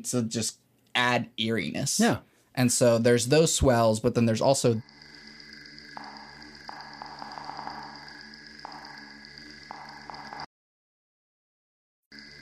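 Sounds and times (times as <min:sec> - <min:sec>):
speech: 0:00.0 - 0:05.1
buzzy electronic chirring of digital bug sounds: 0:04.7 - 0:10.5.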